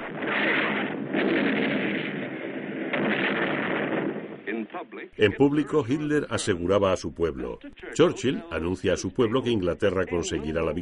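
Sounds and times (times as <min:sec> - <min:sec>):
German long-range guns firing shells across the Channel: 0:00.0 - 0:04.4
speech: 0:04.8 - 0:10.8.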